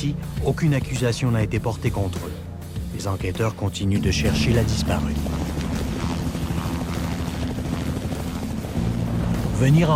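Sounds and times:
speech: 0.0 - 2.4, 3.0 - 5.6, 9.6 - 9.9
coast guard helicopter flying over a river: 4.0 - 9.9.

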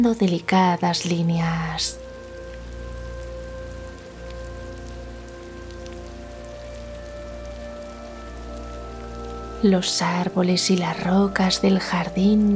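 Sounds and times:
speech: 0.0 - 2.0, 9.6 - 12.5
steady rain pattering on surfaces outdoors: 0.0 - 12.5
water dripping: 0.0 - 12.5.

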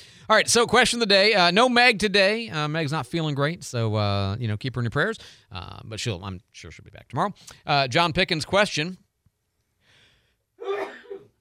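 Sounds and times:
speech: 0.3 - 9.0
person sneezing: 10.6 - 11.4.

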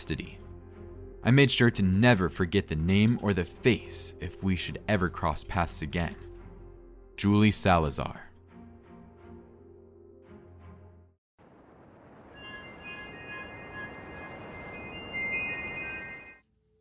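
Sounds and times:
speech: 0.0 - 0.4, 1.2 - 6.3, 7.2 - 8.3
brief tonal passage: 12.2 - 16.4.

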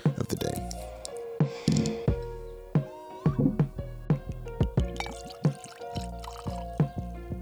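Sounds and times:
liquid glugging and splashy drips: 0.0 - 7.4
drink pouring into a glass: 0.1 - 2.2, 4.7 - 7.0.

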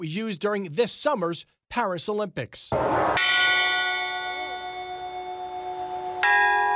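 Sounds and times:
speech: 0.0 - 3.4
large church bell ringing: 2.8 - 6.7.

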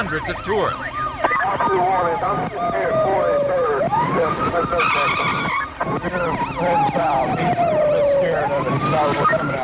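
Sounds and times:
busy traffic noise: 0.0 - 9.6
police siren wailing during vehicle pursuit: 0.0 - 9.6
speech: 0.0 - 9.6
tires screeching: 0.0 - 9.6.

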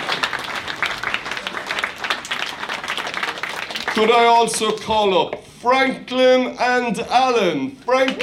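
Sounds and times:
audience applauding: 0.0 - 4.9
speech: 4.0 - 8.2.

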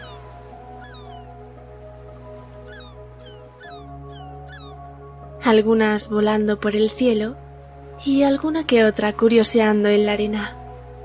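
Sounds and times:
seagulls calling: 0.0 - 5.2
speech: 5.4 - 7.4, 8.0 - 10.6.

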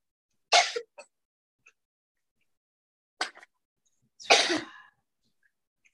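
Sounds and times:
person coughing: 4.2 - 4.9.

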